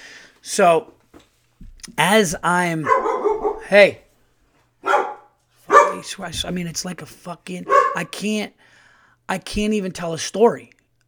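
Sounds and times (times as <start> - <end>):
speech: 0.6 - 1.0, 1.9 - 3.1, 3.7 - 4.0, 6.0 - 8.7, 9.3 - 10.8
dog barking loudly: 2.8 - 3.8, 4.8 - 6.1, 7.6 - 8.1.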